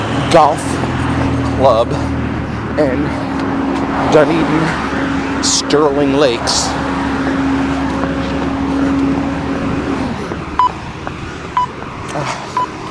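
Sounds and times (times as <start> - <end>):
freight truck rumbling past on the road by a convenience store: 0.0 - 12.9
steady traffic noise: 0.0 - 12.9
speech: 0.3 - 0.8, 1.6 - 2.2, 2.8 - 3.3, 4.0 - 7.4
short electronic beeps: 10.6 - 10.8.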